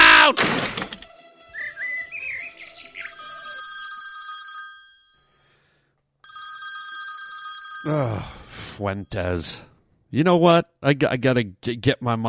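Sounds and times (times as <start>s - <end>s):
loud bright telephone ringing: 3.0s - 9.6s
speech: 7.8s - 12.2s.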